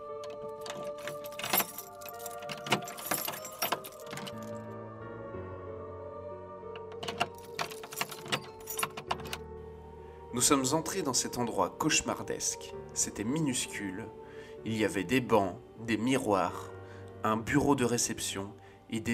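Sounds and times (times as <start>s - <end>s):
many door locks unlocking at a hotel entrance: 0.2s - 4.6s, 6.7s - 9.5s
keys jangling: 0.2s - 4.7s, 6.8s - 9.4s
speech: 10.4s - 19.1s.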